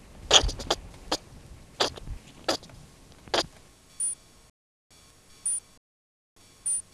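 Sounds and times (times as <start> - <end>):
speckled ground squirrel Spermophilus suslicus alarm calls: 0.3 - 1.2, 1.8 - 2.6.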